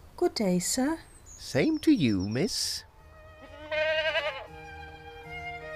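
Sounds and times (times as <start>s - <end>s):
speech: 0.2s - 2.9s
goat bleating: 3.4s - 4.8s.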